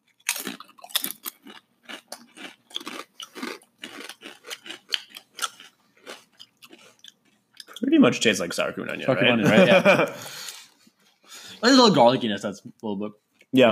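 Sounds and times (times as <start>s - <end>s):
wasabi ranch flavored potato chips crunched and chewed: 0.0s - 7.8s
speech: 7.8s - 10.4s, 11.6s - 13.7s
laughter: 9.0s - 10.5s.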